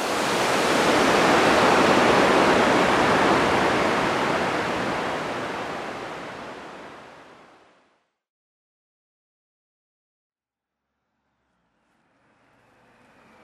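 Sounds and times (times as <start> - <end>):
waterfall rushing water: 0.0 - 7.5.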